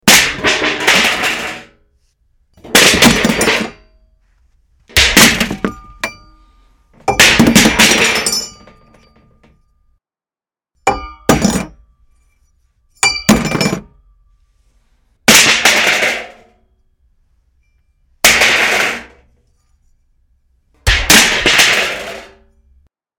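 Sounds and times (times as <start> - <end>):
metal falling: 0.0 - 1.8, 2.6 - 9.8, 10.9 - 14.2, 15.3 - 16.7, 17.6 - 20.0, 20.8 - 22.9.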